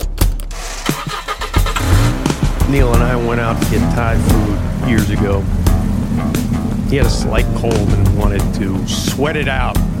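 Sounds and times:
car engine humming while driving: 0.0s - 9.9s
speech: 2.7s - 5.6s, 6.3s - 9.9s.

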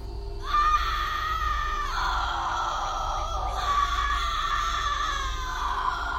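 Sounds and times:
low rumble: 0.0s - 6.1s
women screaming in agony: 0.4s - 6.1s.

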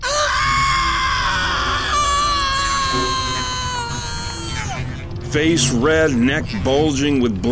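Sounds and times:
woman screaming in rage: 0.0s - 5.0s
speech: 5.3s - 7.5s.

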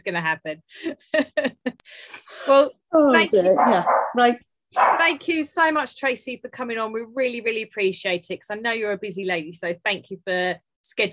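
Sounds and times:
speech: 0.0s - 11.1s
several dogs barking: 3.4s - 5.2s
dogs yipping with whiny rising barks: 3.5s - 4.2s.

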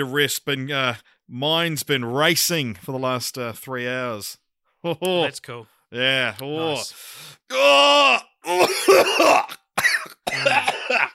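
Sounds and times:
speech: 0.0s - 9.6s
man coughing harshly: 8.4s - 11.1s.

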